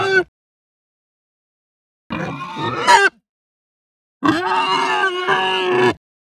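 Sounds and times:
hungry distressed Hampshire pig squealing: 0:00.0 - 0:00.3, 0:02.1 - 0:03.2, 0:04.2 - 0:06.0.

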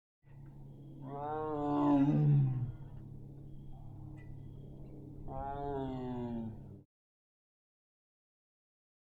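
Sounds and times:
steady low rumble: 0:00.3 - 0:06.8
lion roaring: 0:01.0 - 0:03.0, 0:05.2 - 0:06.8.

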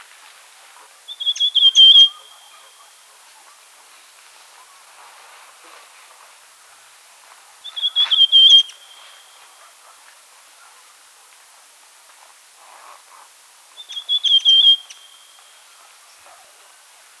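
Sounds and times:
rufous sibia whistled phrases: 0:01.2 - 0:02.6, 0:07.7 - 0:09.0, 0:13.8 - 0:15.3.

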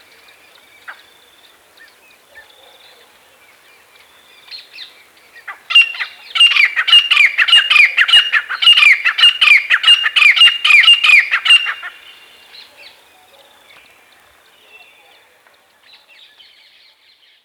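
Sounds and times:
grey francolin calling with harsh ringing squawks: 0:05.5 - 0:12.4.

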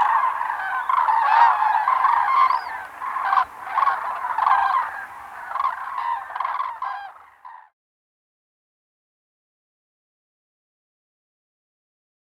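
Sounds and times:
flock of common cranes trumpeting and honking: 0:00.0 - 0:07.7.

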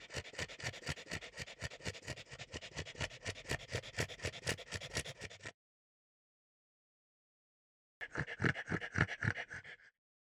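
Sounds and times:
French bulldog gasping and snorting: 0:00.0 - 0:05.5, 0:08.0 - 0:09.9.

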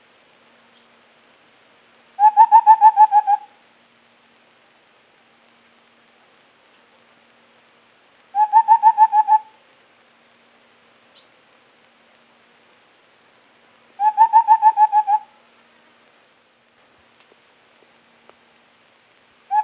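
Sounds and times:
white-browed scimitar babbler hooting: 0:02.2 - 0:03.5, 0:08.4 - 0:09.4, 0:14.0 - 0:15.2.

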